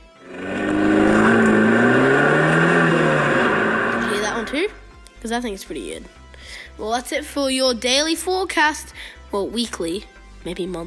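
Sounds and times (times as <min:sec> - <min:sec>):
Fiat 500C car engine revving up hard: 0:00.0 - 0:05.0
speech: 0:05.3 - 0:10.8.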